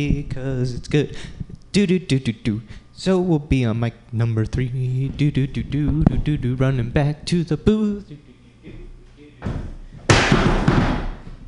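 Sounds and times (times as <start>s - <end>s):
speech: 0.0s - 8.8s
chair knocked over onto floor: 9.4s - 11.4s.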